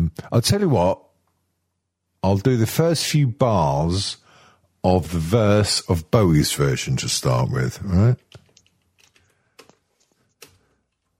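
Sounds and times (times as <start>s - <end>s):
speech: 0.2s - 1.1s, 2.2s - 4.2s, 4.8s - 8.4s
typing on a computer keyboard: 8.2s - 11.1s.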